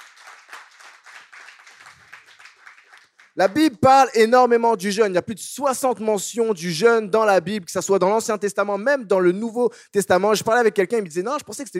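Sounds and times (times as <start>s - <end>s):
crowd clapping: 0.0s - 3.8s
speech: 3.4s - 11.7s.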